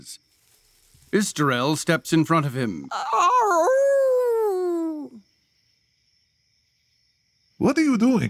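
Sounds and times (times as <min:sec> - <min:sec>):
speech: 0:00.0 - 0:00.3, 0:01.1 - 0:03.9, 0:07.6 - 0:08.2
person imitating a wolf howl: 0:02.9 - 0:05.2.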